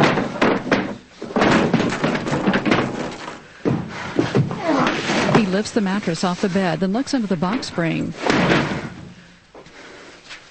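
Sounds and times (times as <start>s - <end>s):
wooden dresser drawers yanked out and tossed to the floor: 0.0s - 5.5s, 8.2s - 9.2s
speech: 5.5s - 8.8s.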